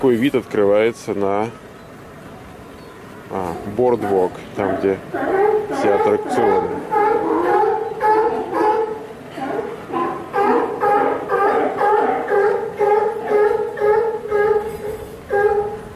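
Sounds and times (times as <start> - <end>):
speech: 0.0 - 1.7, 3.3 - 7.4
sea lions barking at the end of a pier near a boardwalk: 3.6 - 15.9.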